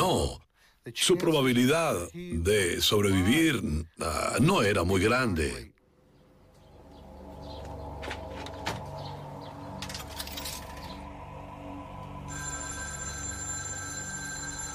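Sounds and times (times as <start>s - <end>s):
speech: 0.1s - 5.7s
telephone ringing: 12.2s - 14.7s.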